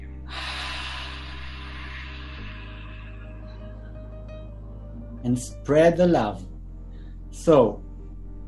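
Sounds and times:
sustained low musical drone: 0.0 - 8.4
person breathing in and out during a guided breathing exercise: 0.2 - 4.2
speech: 5.2 - 6.5, 7.4 - 7.8.

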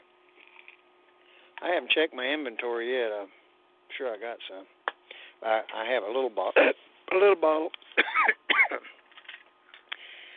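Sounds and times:
speech: 1.6 - 4.8, 5.4 - 8.9
harsh coughs: 7.9 - 9.0.

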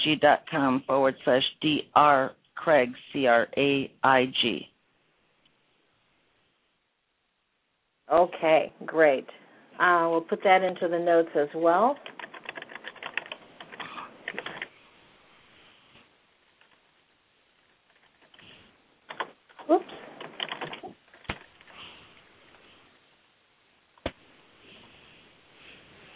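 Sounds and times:
speech: 0.0 - 4.7, 8.1 - 12.1
typing on a computer keyboard: 12.0 - 14.7, 20.2 - 21.4.

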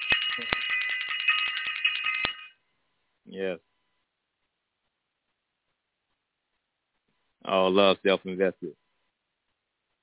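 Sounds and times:
bell ringing: 0.0 - 2.6
speech: 0.4 - 0.6, 3.3 - 3.7, 7.5 - 8.8.

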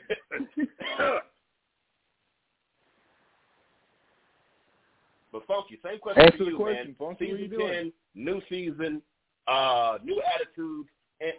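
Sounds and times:
person coughing in a harsh hacking fit: 0.0 - 1.4
speech: 5.5 - 11.3.

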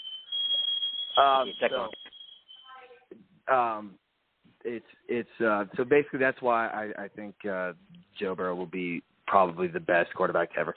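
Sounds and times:
shrill steady smoke alarm tone: 0.0 - 3.2
speech: 1.2 - 2.1, 3.1 - 4.0, 4.6 - 10.7.

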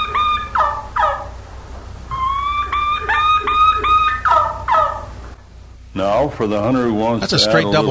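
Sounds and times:
wild turkey kee-kee run call: 0.0 - 1.4, 2.1 - 5.4
speech: 6.0 - 7.9.

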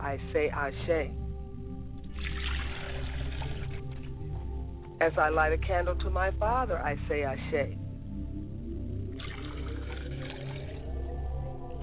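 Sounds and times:
low hum: 0.0 - 11.8
speech: 0.1 - 1.2, 5.0 - 7.8
liquid libation being poured out: 2.1 - 4.1, 9.1 - 10.9.

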